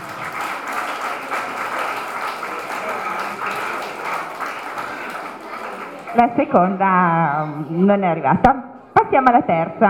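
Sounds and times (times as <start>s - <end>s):
audience applause: 0.0s - 6.6s
speech: 6.2s - 9.8s.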